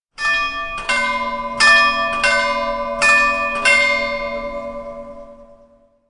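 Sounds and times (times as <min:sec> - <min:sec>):
railway station bell in Poschiavo: 0:00.2 - 0:06.0.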